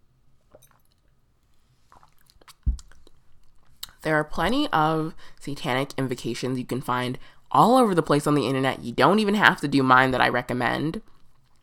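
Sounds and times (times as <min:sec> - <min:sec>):
person sipping tea: 0:00.6 - 0:03.9
speech: 0:04.0 - 0:11.1.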